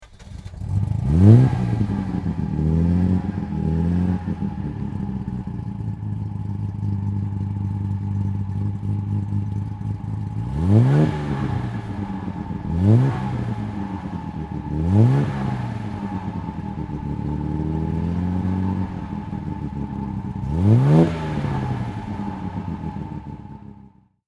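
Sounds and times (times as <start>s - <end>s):
Austin-Healey car engine: 0.0s - 24.2s.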